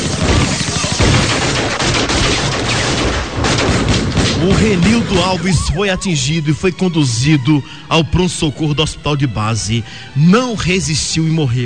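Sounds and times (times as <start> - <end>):
dense burst of gunfire: 0.0 - 5.7
speech: 4.4 - 11.6.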